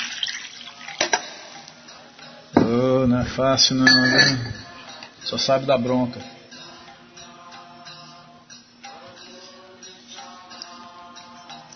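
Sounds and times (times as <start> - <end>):
water being poured: 0.0 - 1.1
speech: 2.7 - 4.6, 5.3 - 6.4.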